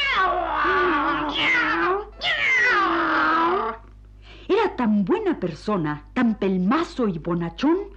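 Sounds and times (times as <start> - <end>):
cat meowing: 0.0 - 3.8
speech: 4.8 - 7.9.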